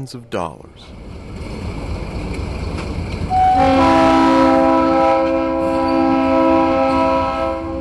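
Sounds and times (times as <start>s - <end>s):
speech: 0.0s - 1.1s, 3.6s - 3.9s
low rumble of an arriving freight train: 0.0s - 7.7s
freight train horn blast: 3.3s - 7.7s.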